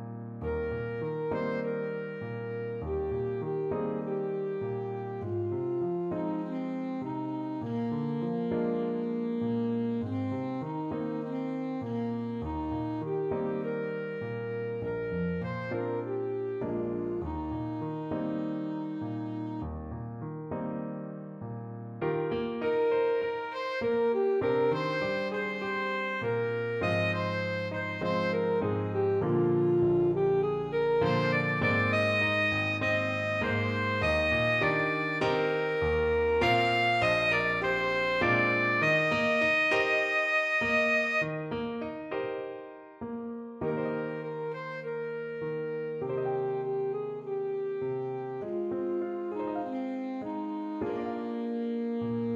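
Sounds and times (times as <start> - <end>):
saxophone: 0.4 - 20.5, 22.0 - 42.3, 43.6 - 52.3.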